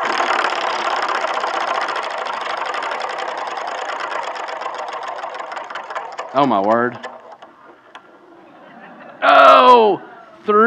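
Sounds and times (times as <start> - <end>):
prize wheel pointer ticking against pegs while spinning: 0.0 - 8.2
speech: 6.3 - 7.1, 9.8 - 10.6
laughter: 8.2 - 10.4.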